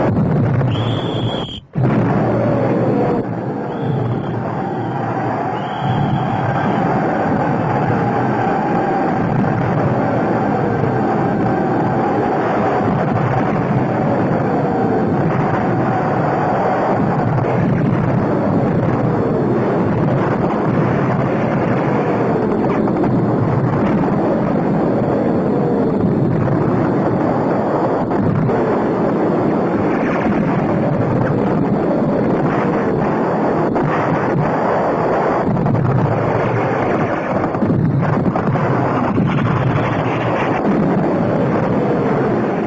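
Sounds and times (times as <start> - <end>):
continuous roar of artillery fire from 75s: 0.0 - 42.6
faint whistling tones: 0.6 - 1.8, 3.5 - 7.1.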